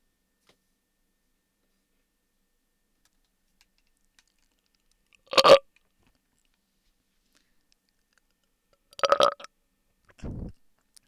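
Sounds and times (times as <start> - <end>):
person burping with throaty burps and a gurgling belch: 5.3 - 5.6, 9.0 - 9.5.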